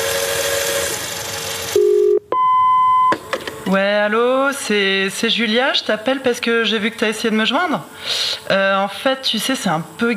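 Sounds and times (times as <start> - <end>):
telephone answering machine tone: 1.7 - 3.2
higher steady beep of a telephone answering machine: 1.8 - 3.2
speech: 3.7 - 10.1.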